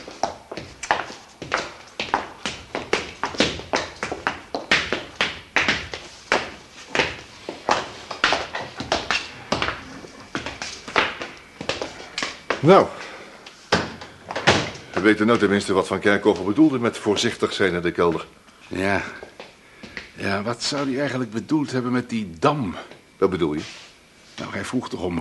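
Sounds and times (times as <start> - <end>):
footsteps climbing a staircase up from a cellar: 0.0 - 15.6
speech: 12.6 - 13.0, 15.0 - 19.3, 20.2 - 23.8, 24.4 - 25.1.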